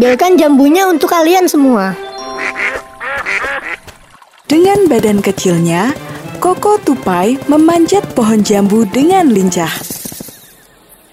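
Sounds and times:
speech: 0.0 - 2.0, 4.5 - 9.9
ducks quacking: 2.4 - 4.2.

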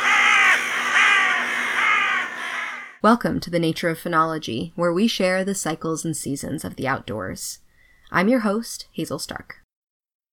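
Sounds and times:
raven croaking: 0.0 - 3.0
speech: 3.0 - 9.6.

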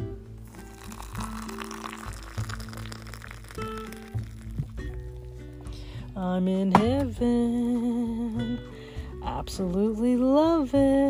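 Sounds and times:
Nescafé coffee pouring into a cup: 0.4 - 6.0
speech: 6.2 - 8.8, 9.4 - 11.0.

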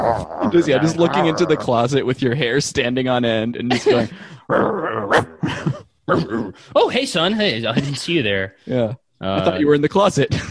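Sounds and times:
person imitating a dog's growl: 0.0 - 1.9, 4.5 - 6.7
speech: 0.2 - 10.4.

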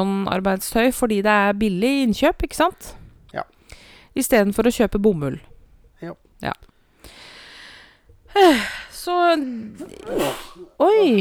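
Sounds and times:
speech: 0.0 - 7.2, 8.4 - 11.1
person sneezing: 9.5 - 10.8.

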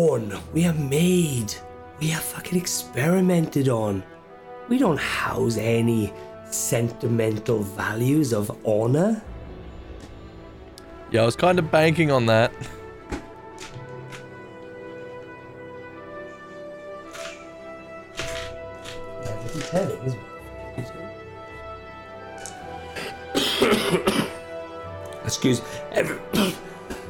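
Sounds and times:
speech: 0.0 - 9.3, 11.1 - 12.8, 19.7 - 20.3, 25.3 - 26.6
ill person clearing throat: 23.0 - 24.4, 26.3 - 26.7
ill person coughing: 23.0 - 24.4, 26.3 - 26.8.

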